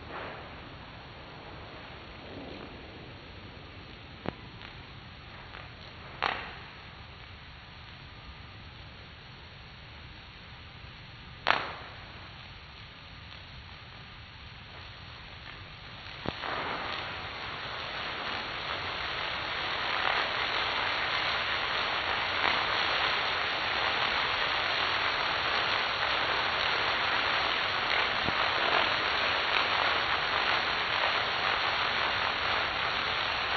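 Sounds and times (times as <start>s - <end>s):
axial explosive explosion: 0.0s - 6.8s, 11.4s - 12.4s, 15.4s - 33.5s.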